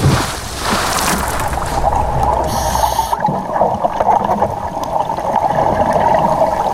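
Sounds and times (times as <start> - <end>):
pool water splashing as a diver enters: 0.0 - 6.7
bubbly underwater hiss in a pool: 0.6 - 3.3.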